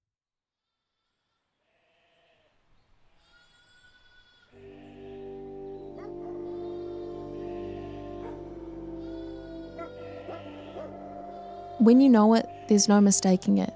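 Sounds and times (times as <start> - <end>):
dense chorus of bleating sheep: 1.6 - 2.5, 3.1 - 13.7
Huntaway dog barking loudly: 9.8 - 11.0
speech: 11.8 - 13.7.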